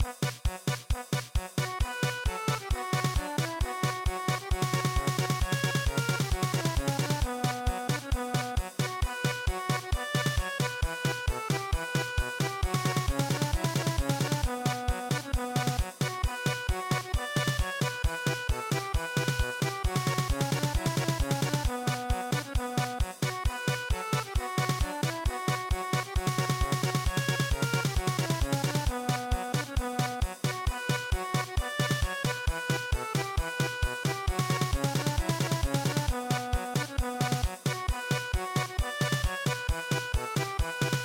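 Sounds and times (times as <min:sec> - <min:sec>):
German polka music: 0:00.0 - 0:41.0.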